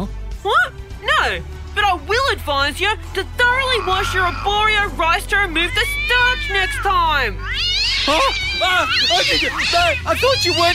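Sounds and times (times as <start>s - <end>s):
speech: 0.4s - 10.7s
cats meowing and caterwauling: 3.6s - 10.7s.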